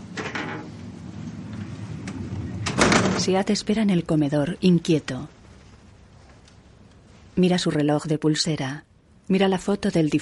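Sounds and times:
steady low hum: 0.0 - 10.1
house door being shut: 0.1 - 3.5
speech: 3.2 - 5.4, 7.4 - 10.1.

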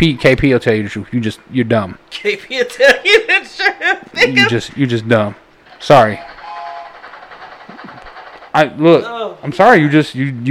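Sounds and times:
speech: 0.0 - 6.3, 8.6 - 10.4
laughter: 2.7 - 4.5
rumble and rattle of a passing train: 5.6 - 9.0
train horn sound effect blast: 6.4 - 7.0.

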